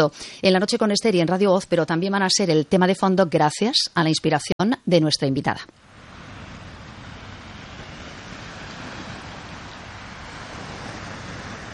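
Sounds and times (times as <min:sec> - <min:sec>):
speech: 0:00.0 - 0:05.8
sea waves washing in: 0:05.7 - 0:11.7.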